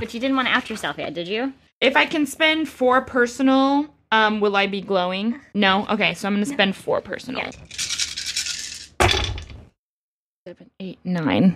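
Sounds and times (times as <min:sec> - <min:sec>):
speech: 0:00.0 - 0:07.8, 0:10.5 - 0:11.5
dice rattling: 0:07.5 - 0:09.4.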